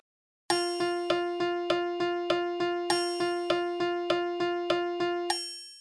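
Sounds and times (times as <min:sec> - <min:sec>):
two musical notes: 0:00.5 - 0:05.4.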